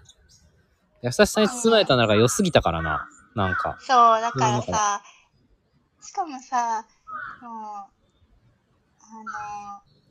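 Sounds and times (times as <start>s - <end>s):
speech: 1.0s - 5.1s, 6.0s - 8.0s, 9.1s - 9.9s
laughter: 1.1s - 3.7s, 4.3s - 4.8s
crow cawing: 1.8s - 4.6s, 7.1s - 7.4s.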